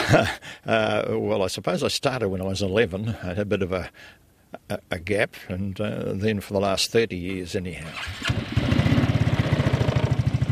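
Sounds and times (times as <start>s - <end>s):
speech: 0.1s - 8.9s
quad bike engine running at a steady low throb: 7.9s - 10.5s.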